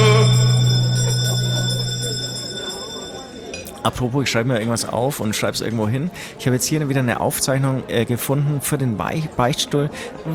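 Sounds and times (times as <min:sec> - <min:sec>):
bell ringing for the last round: 0:00.0 - 0:03.7
speech: 0:03.8 - 0:10.3.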